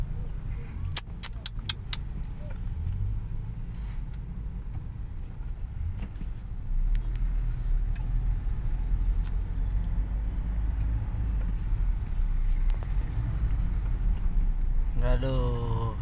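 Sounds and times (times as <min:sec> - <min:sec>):
car engines idling in a traffic jam: 0:00.0 - 0:15.9
sharp metallic clicks: 0:00.9 - 0:02.1
speech: 0:15.2 - 0:15.4.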